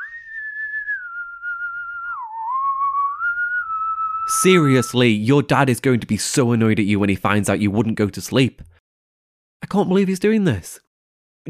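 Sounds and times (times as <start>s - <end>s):
person whistling a slow wavering tune: 0.0s - 4.8s
speech: 4.3s - 8.7s, 9.6s - 10.8s.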